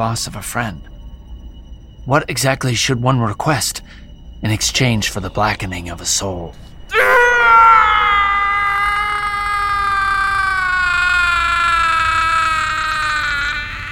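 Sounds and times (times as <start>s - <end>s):
speech: 0.0s - 0.9s, 2.0s - 7.1s
man screaming in agony: 6.9s - 13.8s.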